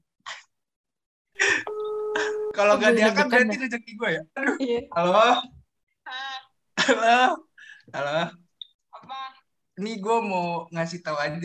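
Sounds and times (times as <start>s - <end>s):
phone ringback tone: 1.7s - 3.2s
speech: 2.6s - 6.2s, 6.9s - 8.4s, 9.8s - 11.4s.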